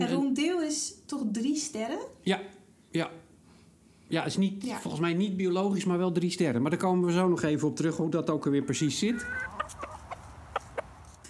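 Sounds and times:
speech: 0.0 - 3.3, 4.1 - 9.8
chickens clucking in a barn: 8.4 - 11.0.

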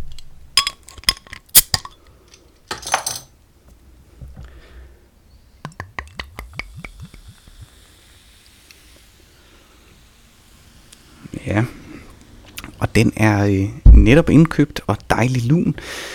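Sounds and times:
6.5 percent beer bottle clinking: 2.7 - 3.3
speech: 13.0 - 16.1.

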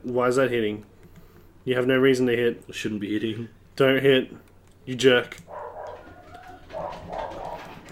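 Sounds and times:
speech: 0.0 - 0.9, 1.6 - 5.6
low hum: 0.0 - 7.8
dog barking muffled through the ceiling from another floor: 5.5 - 7.8.

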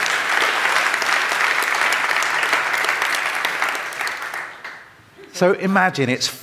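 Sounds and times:
large church audience applause: 0.0 - 5.0
speech: 5.4 - 6.4.

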